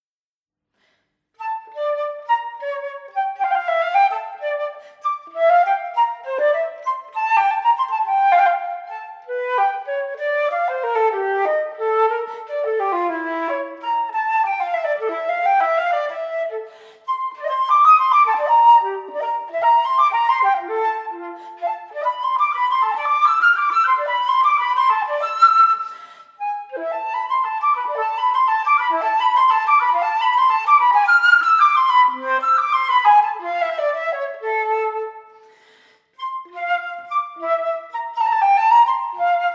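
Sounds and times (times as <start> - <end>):
flute performing a Baroque gigue: 1.4 - 39.5.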